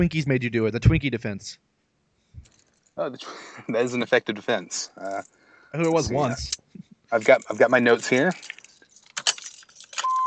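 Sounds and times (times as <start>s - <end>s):
speech: 0.0s - 1.7s, 3.0s - 8.6s
keys jangling: 2.4s - 3.0s, 7.2s - 10.2s
car lock single-tone beep: 10.0s - 10.2s.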